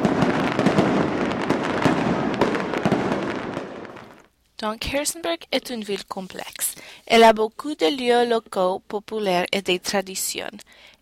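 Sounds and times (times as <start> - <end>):
firecrackers popping and crackling: 0.0 - 4.3
speech: 4.6 - 11.0.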